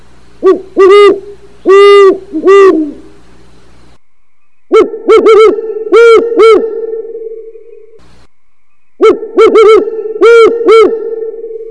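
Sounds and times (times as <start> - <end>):
great horned owl calls: 0.4 - 3.2, 4.7 - 8.0, 9.0 - 11.6.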